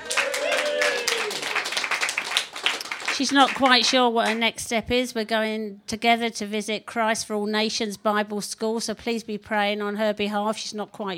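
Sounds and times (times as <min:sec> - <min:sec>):
people whooping and cheering: 0:00.0 - 0:02.0
crowd clapping: 0:00.0 - 0:04.4
speech: 0:03.2 - 0:11.1.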